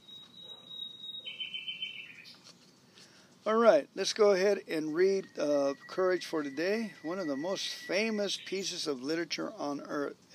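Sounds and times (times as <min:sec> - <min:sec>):
nightingale singing: 0:00.0 - 0:02.5, 0:05.0 - 0:09.0
speech: 0:03.4 - 0:10.3.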